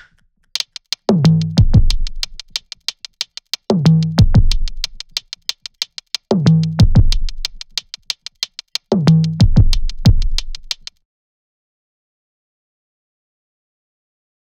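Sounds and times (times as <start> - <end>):
hard bounce drum beat: 0.6 - 10.9.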